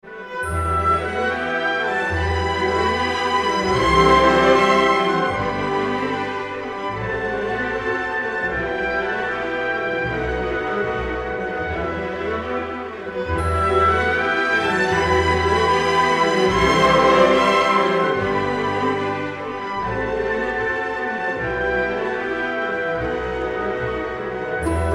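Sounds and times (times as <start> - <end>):
classical music tone: 0.0 - 24.9.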